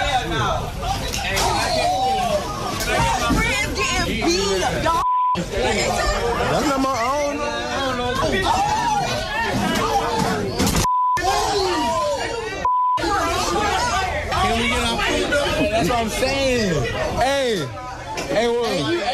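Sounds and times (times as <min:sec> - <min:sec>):
crowd chatter in a busy fast-food restaurant: 0:00.0 - 0:19.1
brief electronic beeps: 0:05.0 - 0:05.4, 0:10.8 - 0:11.2, 0:12.6 - 0:13.0
speech: 0:05.4 - 0:07.1, 0:15.8 - 0:19.1.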